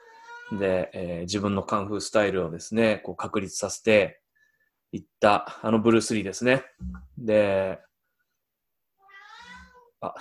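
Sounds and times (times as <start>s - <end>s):
pet cat meowing: 0.0s - 0.6s, 9.0s - 10.0s
speech: 0.5s - 4.2s, 4.9s - 7.9s, 10.0s - 10.1s.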